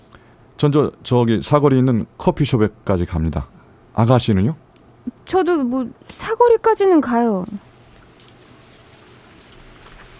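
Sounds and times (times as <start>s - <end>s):
speech: 0.6s - 7.6s
soft rain patter: 6.4s - 10.1s.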